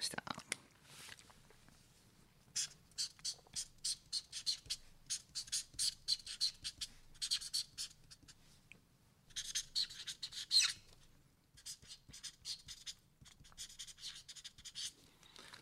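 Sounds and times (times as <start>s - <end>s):
speech: 0.0s - 0.2s
pen scratching and squeaking on a stiff shikishi board: 2.6s - 8.2s, 9.4s - 10.8s, 11.6s - 14.9s.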